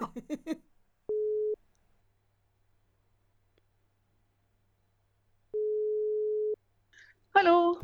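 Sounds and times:
laughter: 0.0 - 0.6
person talking: 0.0 - 0.6
telephone ringback tone of outgoing call: 1.1 - 1.6, 5.6 - 6.6.

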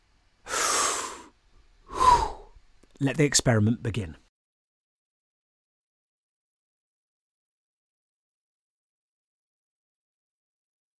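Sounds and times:
deep breath: 0.5 - 2.6
speech: 3.0 - 4.2.

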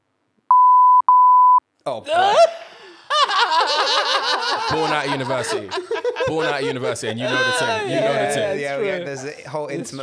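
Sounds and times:
loud steady censor bleep tone over a person's name: 0.5 - 1.6
speech: 1.8 - 2.6, 3.4 - 10.0
laughter: 1.9 - 10.0.

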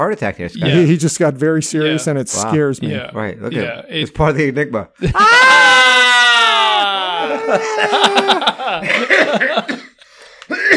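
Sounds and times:
speech: 0.0 - 5.6, 7.5 - 9.8
person screaming with downward sliding pitch: 5.0 - 8.5
laughter: 6.6 - 10.0
rough choppy coughing: 8.8 - 10.7.

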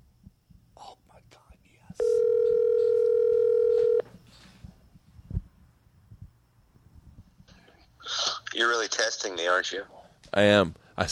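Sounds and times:
soft noise: 0.0 - 11.1
telephone ringing tone on an outgoing call: 2.0 - 4.1
speech: 9.0 - 11.1.

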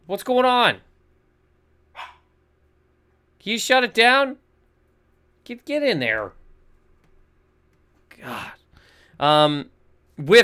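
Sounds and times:
quiet hum: 0.0 - 10.4
speech: 0.1 - 0.9, 3.4 - 4.4, 5.4 - 6.4, 8.2 - 8.6, 9.2 - 10.4
female dog barking: 2.0 - 2.3.

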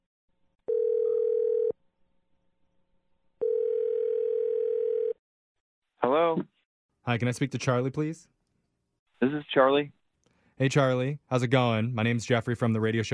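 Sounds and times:
long steady telephone ringing tones: 0.7 - 1.8, 3.4 - 5.2
speech: 7.1 - 8.3, 9.2 - 10.0, 10.6 - 13.1.

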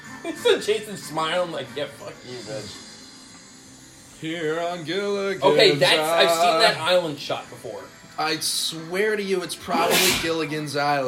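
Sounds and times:
speech: 0.2 - 2.9, 4.2 - 11.0
person sneezing loudly: 9.8 - 10.3.

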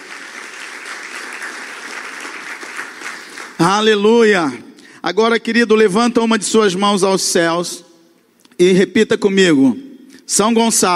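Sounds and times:
sustained applause from a large audience: 0.0 - 3.7
speech: 3.6 - 7.9, 8.6 - 10.9.

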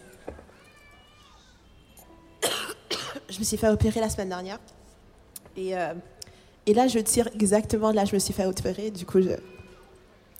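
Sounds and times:
sharp harsh coughs: 2.4 - 3.3
speech: 3.4 - 4.8, 5.6 - 9.5.

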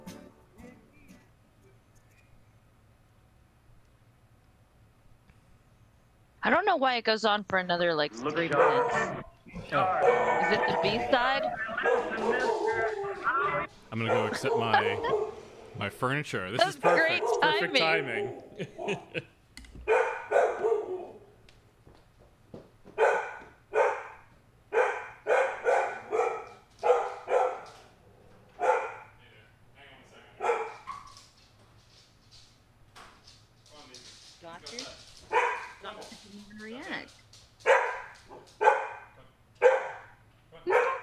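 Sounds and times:
speech: 6.4 - 19.3
laughter: 8.4 - 15.3, 16.6 - 19.4
dog barking: 8.4 - 15.4, 16.6 - 19.2, 19.8 - 21.3, 23.0 - 27.9, 28.5 - 29.2, 30.4 - 31.2, 35.3 - 36.0, 37.6 - 41.0.

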